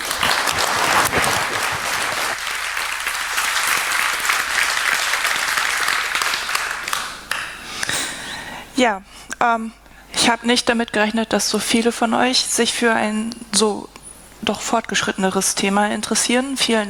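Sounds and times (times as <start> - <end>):
loud sustained applause from a large audience: 0.0 - 7.6
speech: 8.8 - 16.8.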